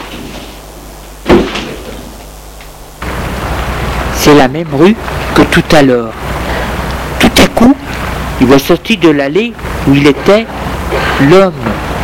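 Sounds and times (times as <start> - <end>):
heavy entrance door thuds: 1.2 - 2.0
rush of noise as entrance door opens: 2.8 - 12.0
speech: 4.3 - 6.2, 7.4 - 11.8.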